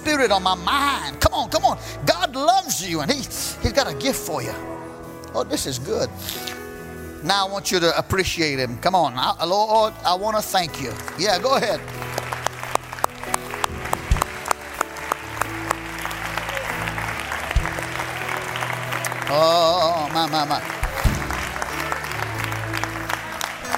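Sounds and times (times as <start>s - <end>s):
speech: 0.1s - 6.6s, 7.2s - 12.0s, 19.3s - 20.8s
crowd clapping in a large room: 10.7s - 23.7s
brief musical swell: 11.8s - 23.7s.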